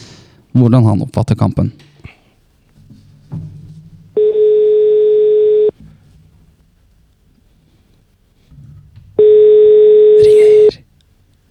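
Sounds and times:
speech: 0:00.6 - 0:01.9
ringback tones from an outgoing phone call: 0:04.2 - 0:05.7, 0:09.2 - 0:10.7.

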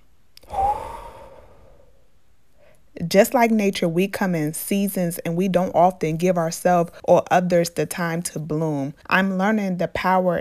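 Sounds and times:
deep breath: 0:00.4 - 0:02.9
speech: 0:03.1 - 0:10.4.

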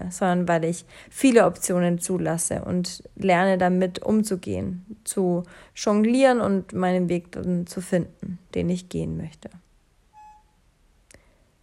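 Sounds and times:
speech: 0:00.1 - 0:09.6
baby monitor low battery beep: 0:10.1 - 0:10.6.

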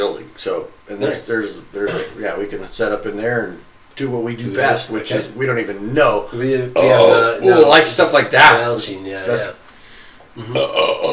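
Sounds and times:
speech: 0:00.0 - 0:09.6, 0:10.4 - 0:11.1
person belching: 0:06.8 - 0:07.6, 0:10.4 - 0:11.1.

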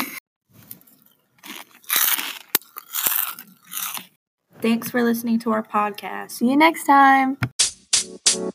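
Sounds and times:
crunchy chewing of a person eating: 0:00.6 - 0:04.2
speech: 0:04.6 - 0:07.5.

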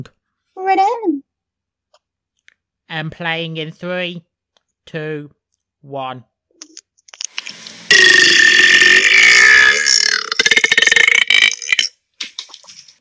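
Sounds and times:
speech: 0:00.0 - 0:01.2, 0:02.9 - 0:04.3, 0:04.9 - 0:06.3
loud belch played from a voicemail: 0:07.9 - 0:12.0.

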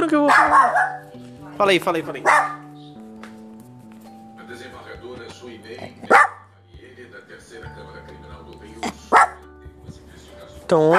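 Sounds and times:
speech: 0:00.0 - 0:00.9, 0:01.6 - 0:02.6, 0:10.7 - 0:10.9
dog barking: 0:00.2 - 0:01.1, 0:02.2 - 0:02.7, 0:06.0 - 0:06.5, 0:08.9 - 0:09.4, 0:10.8 - 0:10.9.

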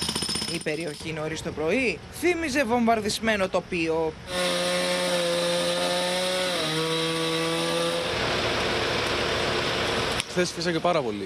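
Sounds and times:
speech: 0:00.5 - 0:04.8, 0:10.4 - 0:11.2
chainsaw cutting tree trunks broken by strong overnight winds: 0:04.3 - 0:10.2.

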